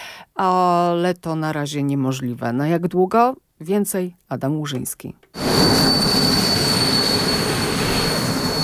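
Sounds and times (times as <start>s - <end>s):
speech: 0.4s - 5.7s
train wheels squealing while stopping at a station: 5.4s - 8.6s.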